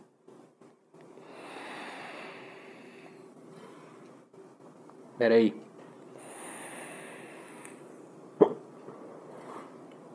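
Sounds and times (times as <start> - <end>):
hiss: 0.0 - 10.1
faint breathing: 1.2 - 4.2, 6.1 - 8.0
speech: 5.2 - 5.6
man hiccuping while smoking: 8.4 - 8.6.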